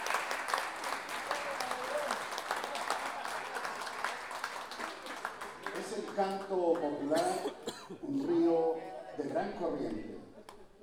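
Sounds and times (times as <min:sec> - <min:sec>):
audience applause for two folk improvising singers at a payador day celebration: 0:00.0 - 0:06.4
speech: 0:06.2 - 0:10.2.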